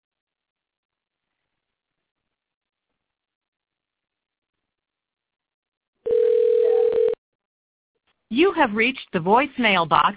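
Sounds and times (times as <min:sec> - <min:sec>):
telephone ringback tone on an outgoing call: 0:06.1 - 0:07.2
speech: 0:08.3 - 0:10.1.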